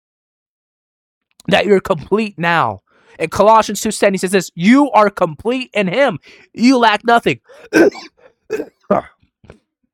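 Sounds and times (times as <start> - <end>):
speech: 1.4 - 9.6
harsh coughing: 7.4 - 9.2.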